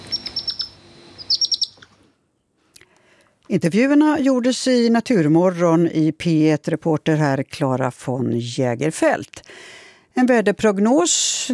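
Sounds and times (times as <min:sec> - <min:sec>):
hedgehog hoglet calling with thin high chirping whistles: 0:00.0 - 0:02.0
speech: 0:03.5 - 0:11.5.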